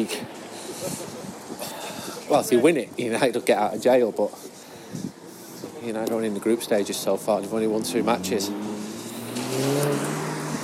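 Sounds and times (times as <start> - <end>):
speech: 0.0 - 1.0, 2.3 - 4.5, 5.8 - 8.7
powerful car engine accelerating: 7.2 - 10.6.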